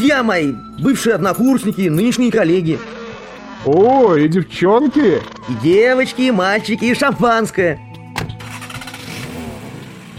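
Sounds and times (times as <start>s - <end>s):
speech: 0.0s - 3.0s, 3.6s - 7.8s
car pulling away along a snow-covered village lane: 2.5s - 4.2s, 8.2s - 10.1s.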